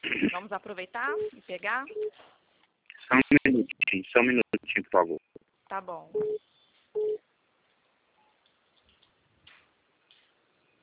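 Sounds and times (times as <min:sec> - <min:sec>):
speech: 0:00.3 - 0:02.4, 0:03.1 - 0:07.2
short steady mid-pitched telephone line beep after a dropped call: 0:01.1 - 0:02.1, 0:06.2 - 0:06.4, 0:07.0 - 0:07.2.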